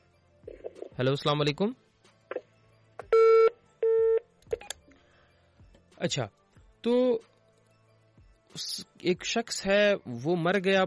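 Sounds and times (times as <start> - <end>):
speech: 1.0 - 1.8, 6.0 - 7.3, 8.6 - 10.8
telephone line beeps from an incoming call: 3.1 - 4.2.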